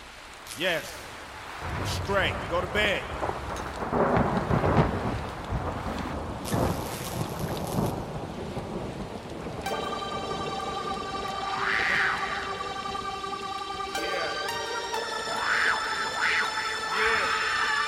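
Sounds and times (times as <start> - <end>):
heavy rain in a thunderstorm: 0.0 - 17.8
speech: 0.6 - 1.0, 1.6 - 4.0
loud rolling thunder in a thunderstorm: 1.6 - 13.0
rising-falling wail: 9.7 - 17.8
sustained tonal drone: 9.7 - 17.8.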